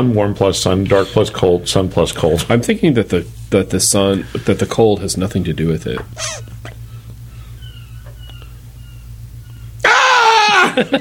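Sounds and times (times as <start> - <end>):
speech: 0.0 - 6.5, 10.8 - 10.9
low steady hum: 0.0 - 10.9
two seagulls fighting and screeching outside a studio: 6.2 - 10.8
laughter: 10.4 - 10.9.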